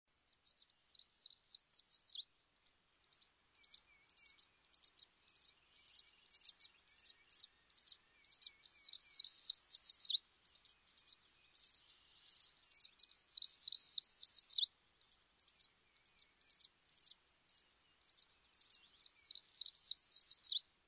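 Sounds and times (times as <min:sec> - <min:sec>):
Northern Parula singing: 0:00.0 - 0:20.7.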